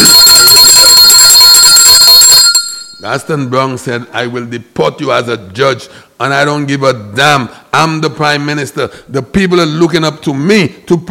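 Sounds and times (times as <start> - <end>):
loud metallic bell ringing: 0.0 - 3.4
speech: 3.1 - 11.0.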